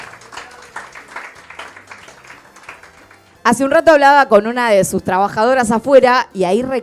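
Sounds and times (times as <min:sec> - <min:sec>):
crowd applauding with dense clapping: 0:00.0 - 0:03.4
speech: 0:03.5 - 0:06.8.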